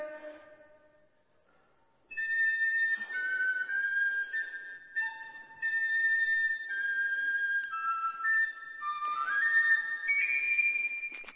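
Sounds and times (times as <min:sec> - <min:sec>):
flute playing sustained notes: 0:00.0 - 0:01.1, 0:02.1 - 0:11.3.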